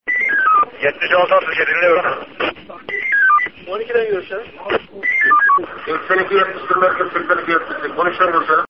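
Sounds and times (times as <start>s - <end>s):
police radio transmission: 0.2s - 8.6s.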